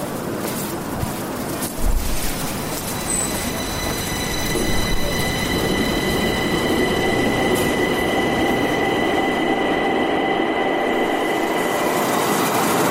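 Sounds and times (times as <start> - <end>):
subway train rumbling along the tracks in Stockholm: 0.0 - 12.8
high metallic subway wheel squeals: 2.2 - 12.5.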